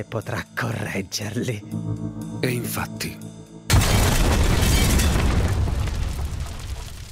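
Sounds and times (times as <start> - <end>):
speech: 0.0 - 3.4
loud explosion: 3.7 - 7.1.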